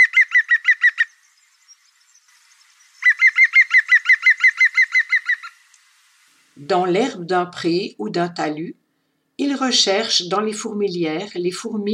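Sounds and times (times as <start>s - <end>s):
European green woodpecker laughing call: 0.0s - 1.2s, 3.0s - 5.6s
speech: 6.6s - 8.8s, 9.6s - 11.9s.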